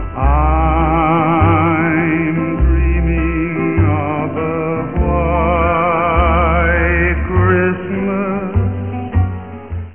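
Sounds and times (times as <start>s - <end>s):
man singing: 0.0s - 9.0s.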